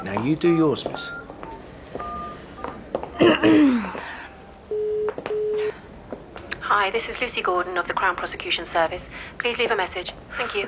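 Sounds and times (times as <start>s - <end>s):
speech: 0.1s - 1.2s, 6.8s - 10.6s
telephone dialing tone beeps: 1.0s - 2.8s, 4.7s - 5.6s.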